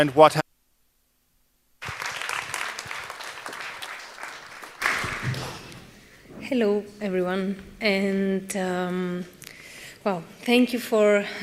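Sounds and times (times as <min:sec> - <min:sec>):
speech: 0:00.0 - 0:00.4, 0:06.5 - 0:09.4, 0:10.0 - 0:11.4
audience applause at an evening talk: 0:01.8 - 0:05.9.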